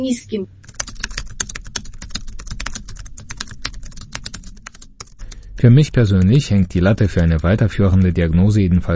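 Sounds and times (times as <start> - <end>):
speech: 0.0 - 0.7, 5.6 - 8.9
faint low hum: 0.0 - 8.9
computer mouse clicking in a medical software program: 0.6 - 5.4.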